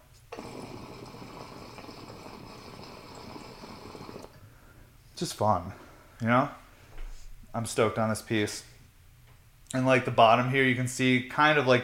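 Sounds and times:
water bubbling through a glass pipe with a welded perc: 0:00.3 - 0:04.4
speech: 0:05.2 - 0:06.6, 0:07.6 - 0:08.7, 0:09.7 - 0:11.8.

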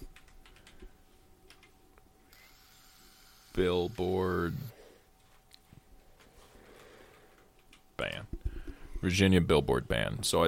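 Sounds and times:
typing on a computer keyboard: 0:00.0 - 0:00.9, 0:01.5 - 0:01.7
steady low hiss: 0:00.9 - 0:10.4
speech: 0:03.6 - 0:04.7, 0:09.0 - 0:10.4.

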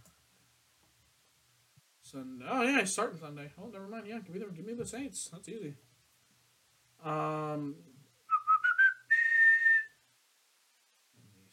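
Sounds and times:
speech: 0:02.1 - 0:05.9, 0:07.0 - 0:07.9
person whistling: 0:08.3 - 0:10.0.

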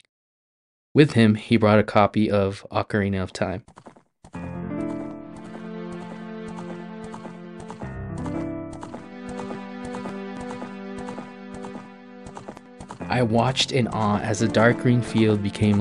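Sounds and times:
speech: 0:01.0 - 0:03.9, 0:13.2 - 0:15.8
horse hooves galloping across a field in a video game: 0:03.6 - 0:15.8
sustained musical tones: 0:04.5 - 0:15.8.

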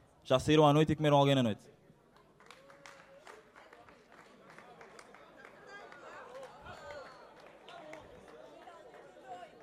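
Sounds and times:
speech: 0:00.3 - 0:01.8
scattered hand claps from a few audience members: 0:02.2 - 0:09.6
murmur of crowd chatter and overlapping voices: 0:03.2 - 0:09.6.

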